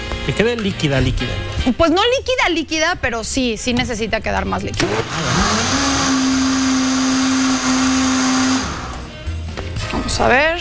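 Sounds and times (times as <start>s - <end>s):
speech: 0.2s - 5.6s, 10.2s - 10.5s
blender whirring while blending crepe batter with milk: 4.8s - 9.2s.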